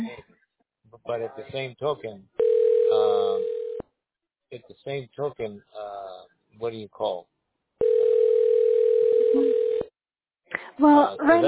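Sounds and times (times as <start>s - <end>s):
speech: 1.1s - 2.3s, 4.5s - 5.9s, 6.6s - 7.3s, 10.8s - 11.4s
telephone dial tone while dialing a number: 2.4s - 3.8s, 7.8s - 9.9s.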